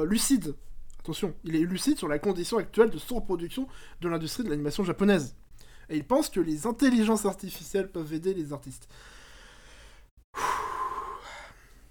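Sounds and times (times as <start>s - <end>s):
speech: 0.0s - 9.2s, 10.3s - 10.5s
loud breath blown into the microphone: 10.4s - 11.7s.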